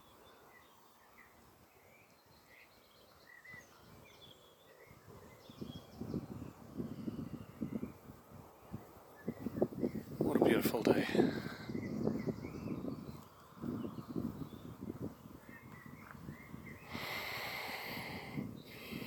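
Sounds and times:
light birdsong in trees: 0:00.0 - 0:19.0
soft gentle outdoor breeze: 0:00.0 - 0:19.0
speech: 0:10.5 - 0:11.5
person breathing with soft snorting sniffing breaths: 0:16.9 - 0:19.0.

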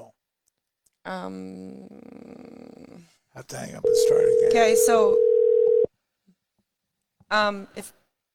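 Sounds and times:
speech: 0:01.1 - 0:02.1, 0:03.4 - 0:05.2, 0:07.3 - 0:08.0
telephone dial tone while placing a call: 0:03.9 - 0:05.9.

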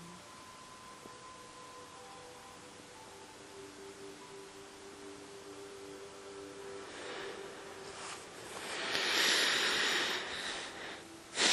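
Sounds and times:
labored breathing out through the nose: 0:06.7 - 0:11.5.

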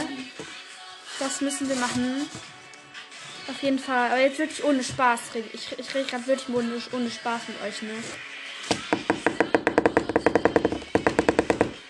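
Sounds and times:
speech: 0:01.2 - 0:02.6, 0:03.5 - 0:08.8
rapid steady hammering: 0:08.7 - 0:11.8.

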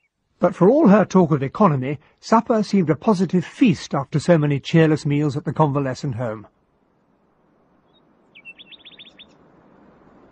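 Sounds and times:
low hiss: 0:00.0 - 0:10.3
speech: 0:00.4 - 0:06.6
nightingale singing at night: 0:07.8 - 0:09.4.

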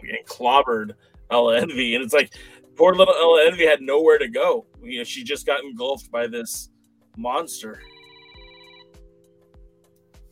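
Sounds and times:
speech: 0:00.3 - 0:07.9
telephone ringing with steady electronic tone: 0:07.7 - 0:09.2.

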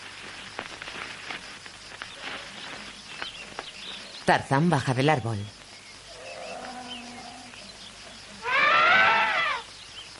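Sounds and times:
faint steady hiss: 0:00.0 - 0:10.1
speech: 0:04.3 - 0:05.6
approaching elephant trumpeting: 0:08.4 - 0:09.6.

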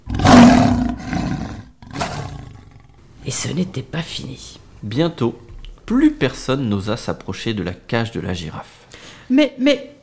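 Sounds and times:
huge animal roar: 0:00.0 - 0:03.0
speech: 0:03.3 - 0:10.0.

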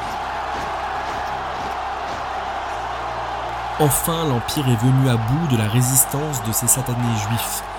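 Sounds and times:
large crowd roaring and cheering: 0:00.0 - 0:07.7
speech: 0:03.8 - 0:07.7.

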